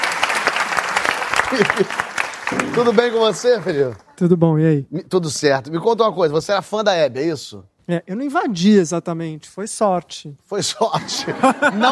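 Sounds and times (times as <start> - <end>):
audience applause welcoming a guest on stage: 0.0 - 4.1
speech: 1.5 - 11.8
laughter: 10.8 - 11.8.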